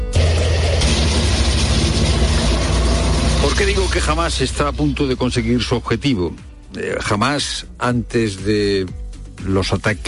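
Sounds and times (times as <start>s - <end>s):
heavy battle tank engines rumbling with grinding mechanical noise: 0.8s - 4.7s
speech: 3.9s - 10.0s.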